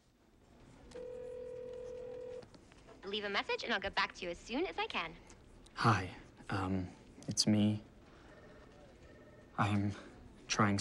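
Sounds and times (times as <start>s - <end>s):
mobile phone electronic line tone while placing a call: 1.0s - 2.4s
speech: 3.1s - 7.9s, 9.6s - 10.7s.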